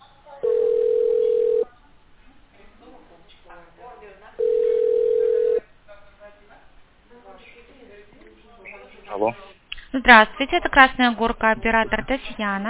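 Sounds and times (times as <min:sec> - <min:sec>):
telephone ringback tone on a phone line while an outgoing call is placed: 0:00.4 - 0:01.7, 0:04.4 - 0:05.6
speech: 0:10.1 - 0:12.6.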